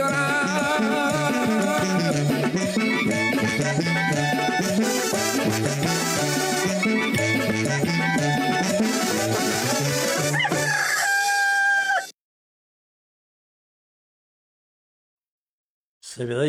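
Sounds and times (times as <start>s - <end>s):
busy music: 0.0s - 11.2s
rooster crowing: 9.7s - 12.2s
speech: 16.2s - 16.4s.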